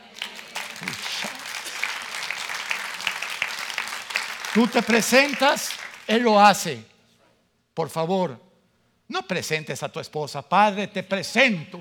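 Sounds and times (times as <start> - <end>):
brief voices and cheers: 0.0 - 5.8
audience applauding: 0.0 - 6.3
speech: 4.6 - 6.9, 7.8 - 8.4, 9.1 - 11.7.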